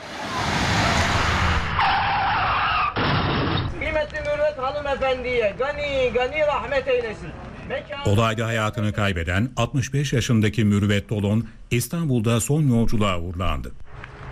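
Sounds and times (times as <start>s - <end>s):
public bus crash screech and grinding noise: 0.0s - 4.0s
speech: 4.9s - 14.1s.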